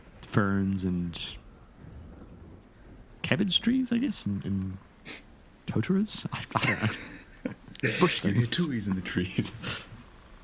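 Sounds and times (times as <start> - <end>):
heavy rain beating down: 0.0 - 10.4
low rumbling undertone: 0.0 - 10.4
speech: 0.3 - 1.4, 3.3 - 9.9
laughter: 6.5 - 8.6.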